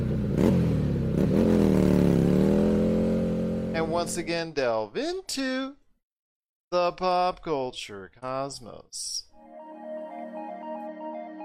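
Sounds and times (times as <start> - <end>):
motorcycle engine revving: 0.0 - 4.2
speech: 3.9 - 5.8, 6.7 - 9.3.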